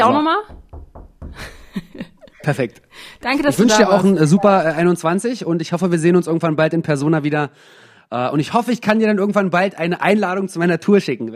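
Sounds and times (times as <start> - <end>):
speech: 0.0 - 0.5, 2.4 - 11.3
knocking on wood: 0.4 - 1.8
laughter: 1.4 - 2.8.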